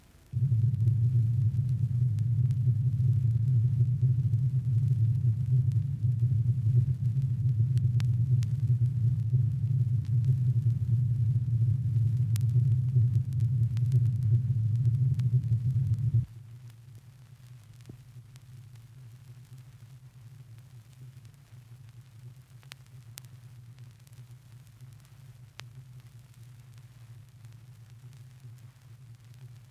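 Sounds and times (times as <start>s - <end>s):
125-cycle test noise in phase and out of phase: 0.3s - 16.3s.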